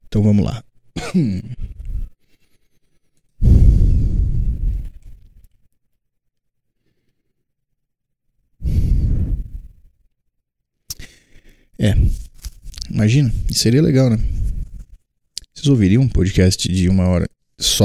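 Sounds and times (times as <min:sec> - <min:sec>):
speech: 0:00.1 - 0:01.6, 0:13.0 - 0:14.4, 0:15.6 - 0:17.8
person breathing straight into a microphone: 0:01.6 - 0:05.4, 0:06.8 - 0:07.4, 0:08.6 - 0:10.0, 0:10.9 - 0:12.3, 0:14.2 - 0:15.0.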